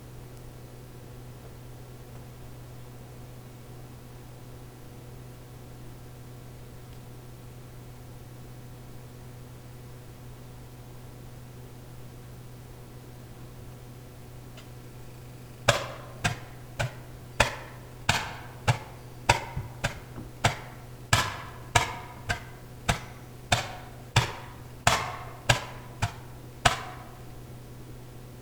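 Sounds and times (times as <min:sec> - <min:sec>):
wood knocking: 0:15.6 - 0:27.3.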